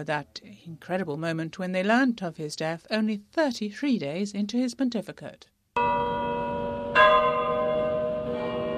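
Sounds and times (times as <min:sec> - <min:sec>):
speech: 0:00.0 - 0:06.4
deep church bell tolling for a pope's death: 0:05.8 - 0:08.7
steady ringing background: 0:05.8 - 0:08.7.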